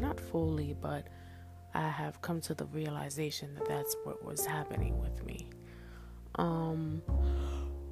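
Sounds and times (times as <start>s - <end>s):
speech: 0.0s - 7.6s
person yawning: 7.2s - 7.8s.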